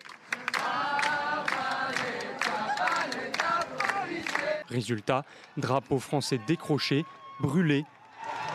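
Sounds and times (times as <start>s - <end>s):
large protest crowd chanting feminist and anti-police slogans at a demonstration in France: 0.3s - 4.7s
speech: 4.7s - 8.4s.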